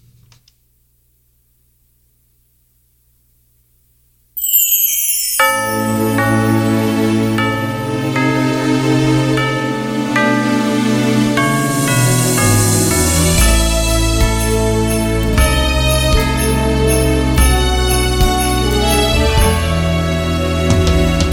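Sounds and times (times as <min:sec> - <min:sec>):
bright chiming bells ringing: 0:04.4 - 0:20.6
loud, upbeat festive Christmas song intro with full band: 0:04.4 - 0:21.3.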